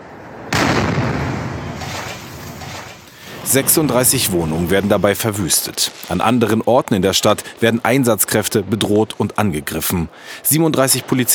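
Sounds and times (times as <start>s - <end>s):
aerial firework shell exploding: 0.4s - 6.5s
speech: 3.5s - 11.3s.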